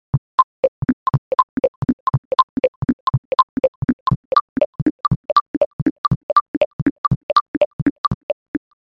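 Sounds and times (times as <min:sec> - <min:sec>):
cheap rhythm box beat: 0:00.1 - 0:08.8.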